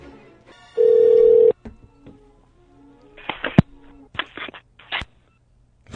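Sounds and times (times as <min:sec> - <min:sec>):
phone ringback tone over a phone line: 0:00.8 - 0:01.6
clicks, bumps and handling noises as the call connects: 0:03.2 - 0:05.2.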